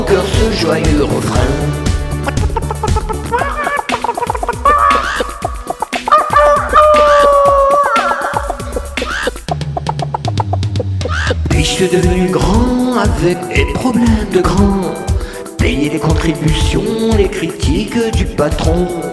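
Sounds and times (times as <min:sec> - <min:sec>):
loud bouncy band music: 0:00.0 - 0:19.1
speech: 0:00.1 - 0:02.4, 0:11.8 - 0:15.1, 0:15.7 - 0:19.1
voice imitating a hen clucking and squawking: 0:02.2 - 0:11.4.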